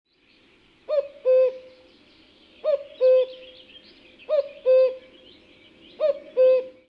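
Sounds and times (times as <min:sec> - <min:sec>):
cuckoo: 0:00.9 - 0:01.8, 0:02.6 - 0:03.5, 0:04.3 - 0:05.1, 0:06.0 - 0:06.8.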